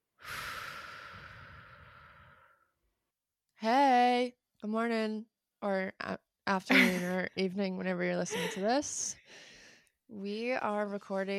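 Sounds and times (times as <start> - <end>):
deep breathing in and out: 0.2 - 2.8, 9.2 - 9.9
speech: 4.6 - 9.5, 10.1 - 11.3.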